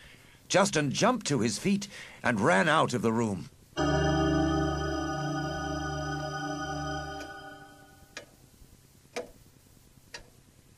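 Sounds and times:
speech: 0.5s - 3.6s
low sustained tone: 3.8s - 8.1s.

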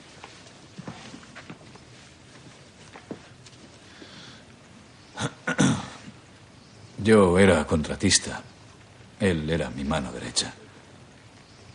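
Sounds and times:
footsteps walking to the centre of a room: 0.0s - 4.2s
speech: 7.0s - 8.5s, 9.2s - 10.6s.

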